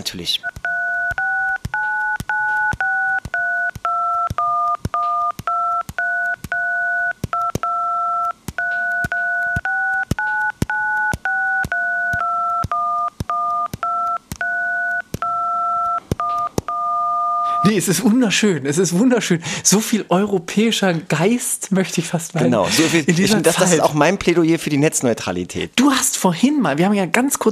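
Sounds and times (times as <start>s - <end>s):
speech: 0.0s - 0.6s, 17.7s - 27.4s
melody played with phone keypad dialing tones: 0.4s - 17.7s.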